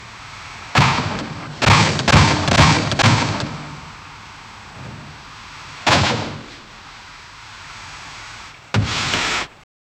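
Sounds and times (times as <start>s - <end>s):
sharp loud rubber pop: 0.8s - 3.6s, 5.9s - 6.6s.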